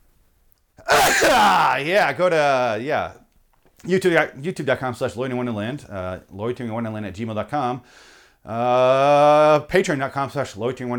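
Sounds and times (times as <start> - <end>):
single forceful human sneeze: 0.8 - 1.8
speech: 1.2 - 3.2, 3.8 - 10.9
short sharp intake of breath: 7.9 - 8.4.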